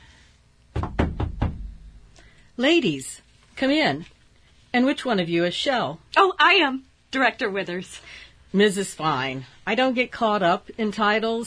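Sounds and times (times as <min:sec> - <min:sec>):
knocking on a door: 0:00.7 - 0:02.0
speech: 0:02.6 - 0:11.4.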